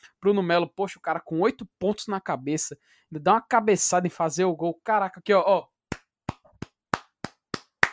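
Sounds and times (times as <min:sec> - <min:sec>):
speech: 0:00.1 - 0:05.7
hand claps: 0:05.9 - 0:07.9.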